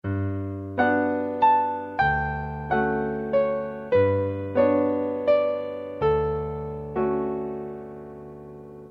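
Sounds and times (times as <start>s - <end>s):
piano piece: 0.0s - 8.8s.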